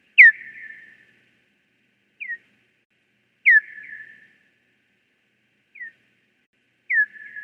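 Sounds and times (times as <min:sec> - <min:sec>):
Hawaiian hoary bat echolocation chirps: 0:00.2 - 0:01.0, 0:03.4 - 0:04.3, 0:06.9 - 0:07.4.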